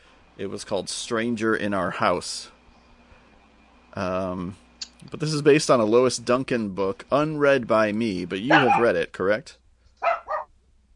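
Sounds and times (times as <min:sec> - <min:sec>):
speech: 0:00.4 - 0:02.6, 0:04.0 - 0:09.6
dog barking: 0:08.5 - 0:08.9, 0:10.0 - 0:10.5.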